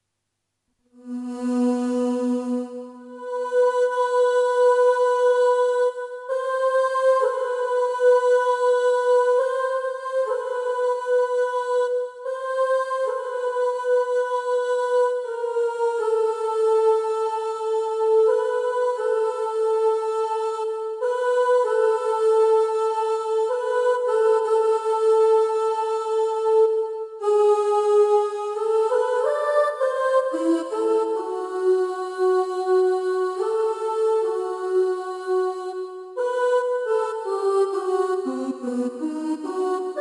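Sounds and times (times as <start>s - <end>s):
choir singing ooh in E minor: 1.0s - 40.0s.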